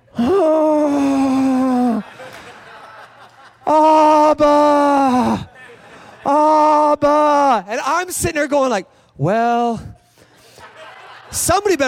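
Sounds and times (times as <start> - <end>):
voice imitating a woman groaning on the ground: 0.1 - 2.0, 3.7 - 5.5
laughter: 1.6 - 7.0, 10.3 - 11.8
speech: 4.4 - 5.0, 7.0 - 9.9, 11.3 - 11.8.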